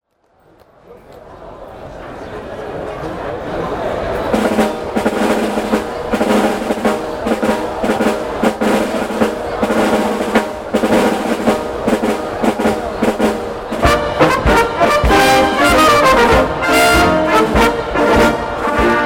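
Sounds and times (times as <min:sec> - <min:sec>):
march music at Oktoberfest in Munich: 0:04.3 - 0:19.0.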